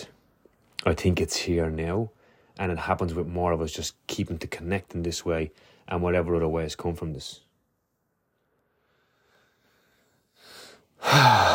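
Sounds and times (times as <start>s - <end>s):
speech: 0.8s - 7.5s, 10.4s - 11.5s
deep human breath with sighing exhale: 2.2s - 2.6s, 8.4s - 11.5s.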